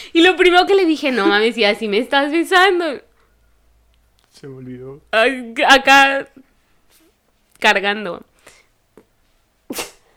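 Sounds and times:
speech: 0.1 - 3.1, 4.4 - 6.5, 7.6 - 8.3
sneeze: 9.7 - 10.1.

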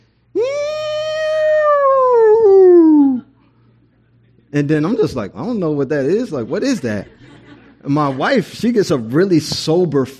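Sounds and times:
voice imitating a tornado siren: 0.4 - 3.3
speech: 4.6 - 10.1
laughter: 6.1 - 8.9.

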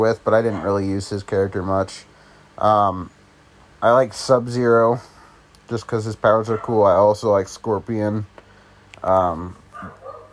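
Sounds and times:
speech: 0.0 - 3.2, 3.8 - 5.1, 5.7 - 8.3, 9.0 - 10.0
dog barking: 6.5 - 6.8, 9.7 - 10.3.

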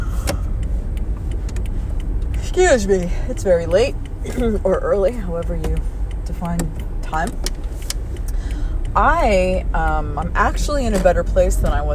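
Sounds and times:
low road rumble in a moving car's cabin: 0.0 - 11.9
speech: 2.6 - 7.5, 9.0 - 11.9.

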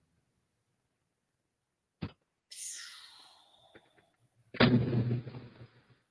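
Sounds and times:
sharp pop: 2.0 - 5.8
long hiss falling in pitch: 2.5 - 4.1.

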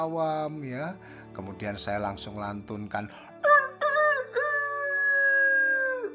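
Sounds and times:
speech: 0.0 - 3.3
person imitating a rooster crowing: 3.4 - 6.1.

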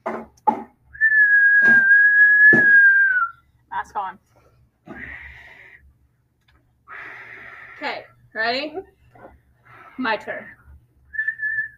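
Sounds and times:
person whistling one long clear note: 1.0 - 3.4
speech: 3.9 - 4.3, 7.8 - 9.0, 10.0 - 10.6
short breathy bursts of a person whistling: 4.8 - 5.9, 6.9 - 8.1.

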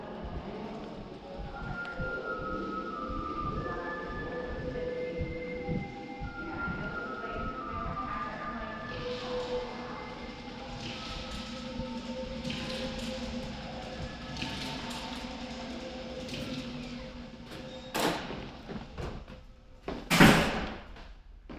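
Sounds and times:
faint voices in a gallery space: 0.0 - 19.8
steady indoor hum in a gallery space: 0.0 - 21.5
scattered tones in a gallery space: 0.9 - 18.0.

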